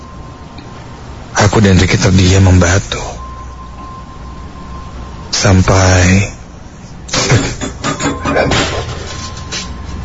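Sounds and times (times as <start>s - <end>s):
speech: 1.6s - 3.2s, 5.4s - 6.4s
household objects clattering in a kitchen while someone rummages: 7.8s - 9.7s.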